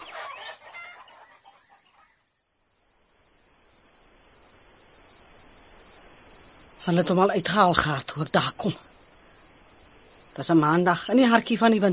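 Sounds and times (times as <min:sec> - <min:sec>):
chickens clucking and squawking: 0:00.0 - 0:02.4
high pulsing chorus of crickets: 0:02.3 - 0:11.9
speech: 0:06.8 - 0:08.9, 0:10.4 - 0:11.9.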